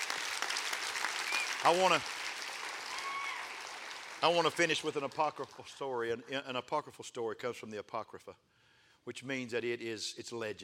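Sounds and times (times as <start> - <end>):
audience clapping: 0.0 - 6.2
speech: 1.6 - 2.2, 4.2 - 10.6
person whooping: 2.9 - 3.5.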